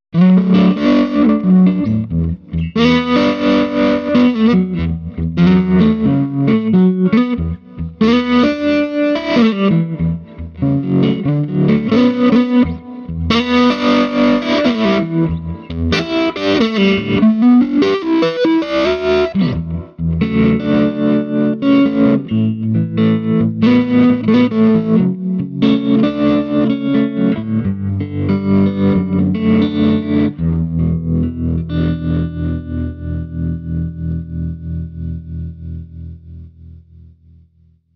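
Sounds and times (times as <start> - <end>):
Telecaster electric guitar with grind distortion and tremolo: 0.2 - 37.4.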